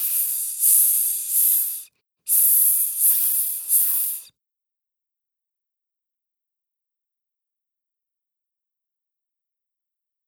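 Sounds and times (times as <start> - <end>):
voice imitating a snake's hiss: 0.0 - 4.3.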